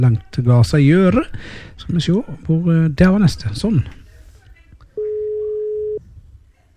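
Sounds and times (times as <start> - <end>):
speech: 0.0 - 4.0
faint low murmur: 0.0 - 6.7
telephone ringback tone on an outgoing call: 5.0 - 6.0.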